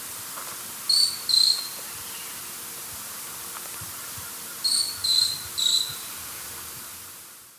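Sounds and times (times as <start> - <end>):
constant hiss: 0.0 - 7.5
short-tailed pygmy tyrant calling in South America eastern lowlands: 0.9 - 2.4, 4.6 - 6.1.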